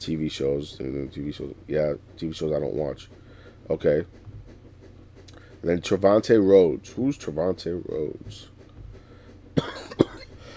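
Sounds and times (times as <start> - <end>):
speech: 0.0 - 4.3, 5.6 - 8.5, 9.6 - 9.8
person coughing: 9.6 - 10.4.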